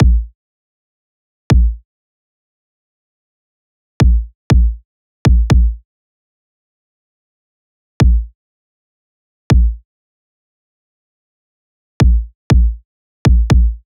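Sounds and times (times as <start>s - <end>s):
pop kick drum loop: 0.0s - 0.3s, 1.5s - 1.8s, 4.0s - 5.8s, 8.0s - 8.3s, 9.5s - 9.8s, 12.0s - 13.8s.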